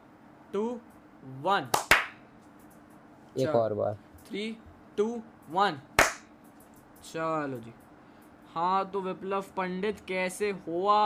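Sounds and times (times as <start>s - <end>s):
speech: 0.5s - 1.8s, 3.4s - 5.9s, 7.0s - 7.8s, 8.5s - 11.0s
hand claps to sync an audio and video recording: 1.7s - 2.2s, 6.0s - 6.3s.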